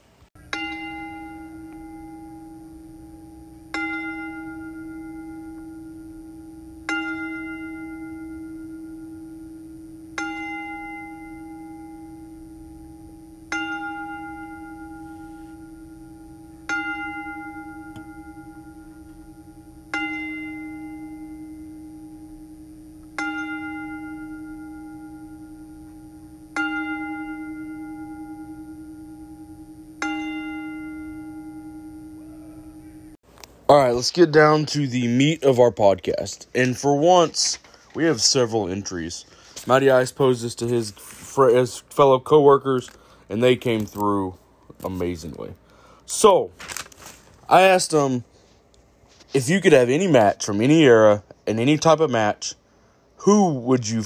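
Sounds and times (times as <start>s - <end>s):
single bell tolling: 0.4s - 22.3s, 23.2s - 33.2s
speech: 33.7s - 46.6s, 47.5s - 48.3s, 49.3s - 52.6s, 53.2s - 54.0s.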